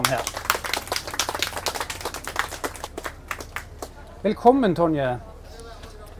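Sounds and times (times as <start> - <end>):
audience applause welcoming a guest: 0.0 - 4.0
speech: 0.1 - 0.4, 4.2 - 5.3.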